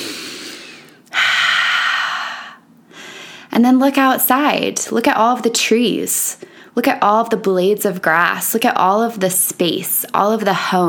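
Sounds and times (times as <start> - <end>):
deep breath in: 0.0 - 3.5
speech: 3.6 - 10.8.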